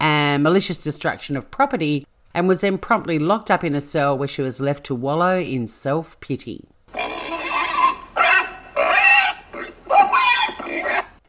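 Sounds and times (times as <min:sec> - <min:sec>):
speech: 0:00.4 - 0:07.0
pig oinking and grunting: 0:06.9 - 0:11.2.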